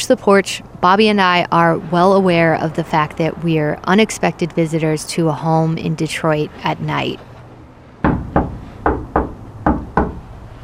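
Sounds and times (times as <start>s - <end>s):
speech: 0.1s - 7.3s
firm knocking on a wooden front door: 8.0s - 10.2s.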